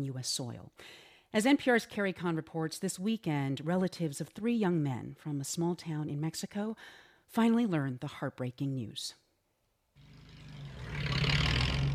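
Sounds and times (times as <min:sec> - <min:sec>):
speech: 0:00.0 - 0:09.2
pickup truck engine revving up steep road: 0:10.0 - 0:11.9.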